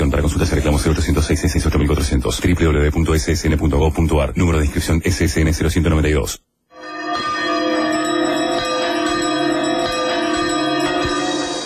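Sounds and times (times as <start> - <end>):
speech: 0.3 - 6.4
two church bells ringing together: 6.7 - 11.6.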